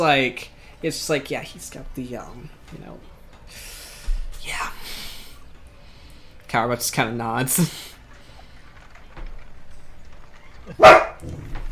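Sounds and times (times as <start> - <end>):
speech: 0.0 - 3.7, 6.5 - 7.9, 10.7 - 11.5
dog barking: 10.8 - 11.2.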